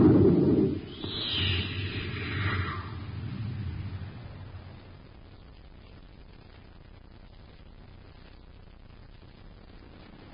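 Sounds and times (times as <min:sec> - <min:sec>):
rocket ship blasting off: 0:00.0 - 0:05.1.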